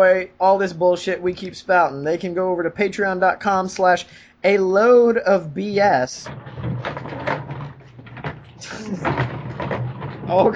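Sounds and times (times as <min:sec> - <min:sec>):
speech: 0:00.0 - 0:06.5, 0:08.6 - 0:09.4, 0:10.3 - 0:10.5
door being shut with a knock and rattle of the frame: 0:06.2 - 0:10.5
laughter: 0:08.6 - 0:09.2.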